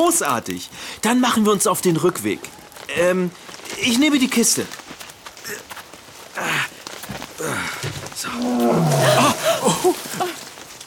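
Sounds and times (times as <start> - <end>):
speech: 0.0 - 4.8, 5.5 - 5.7, 7.4 - 10.4
tiger roaring in short snarls: 8.3 - 9.6.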